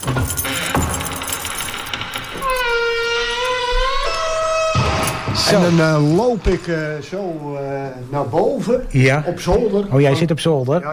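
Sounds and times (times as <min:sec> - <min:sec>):
keys jingling and rattling as a lock is worked: 0:00.0 - 0:05.3
long high-pitched creak: 0:01.6 - 0:07.0
speech: 0:05.5 - 0:10.9.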